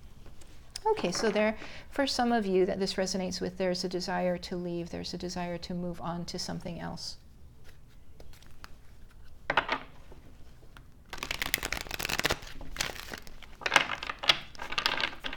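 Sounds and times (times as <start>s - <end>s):
speech: 0.8s - 7.2s
playing cards shuffled and drawn for a card reading: 7.6s - 10.0s, 10.7s - 15.3s.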